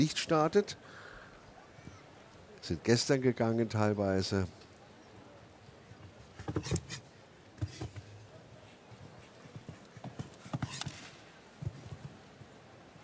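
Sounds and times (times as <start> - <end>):
speech: 0.0 - 1.0, 2.6 - 4.6, 6.6 - 6.9
show jumping horse hooves clip-clopping across an arena: 5.9 - 12.7.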